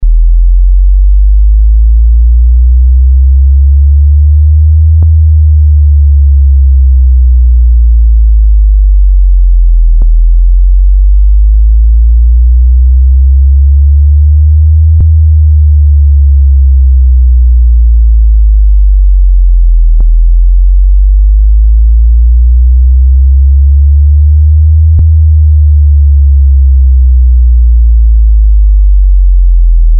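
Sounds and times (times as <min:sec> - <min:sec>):
40 Hz to 80 Hz slow warble tone: 0:00.0 - 0:29.9.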